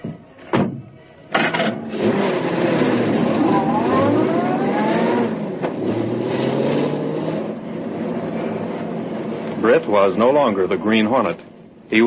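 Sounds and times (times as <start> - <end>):
convertible car engine starting and driving off: 1.4 - 10.8
speech: 9.8 - 12.0.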